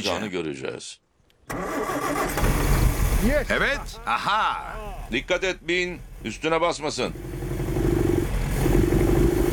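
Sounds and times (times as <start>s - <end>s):
speech: 0.0s - 2.4s, 3.2s - 7.4s
car engine starting and running roughly with fourth cylinder misfiring: 1.5s - 4.0s, 4.9s - 9.5s.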